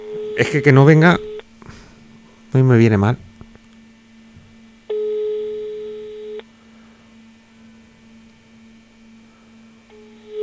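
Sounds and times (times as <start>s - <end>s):
ringing tone of an unanswered phone call: 0.0s - 1.4s, 4.9s - 6.4s, 9.9s - 10.4s
low constant hum: 0.0s - 10.4s
speech: 0.4s - 1.3s, 2.5s - 3.3s.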